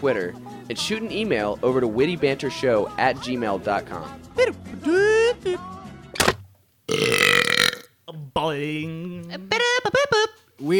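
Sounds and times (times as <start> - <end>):
speech: 0.0 - 5.8, 8.4 - 9.7, 10.6 - 10.7
person burping loudly on cue: 6.9 - 7.9.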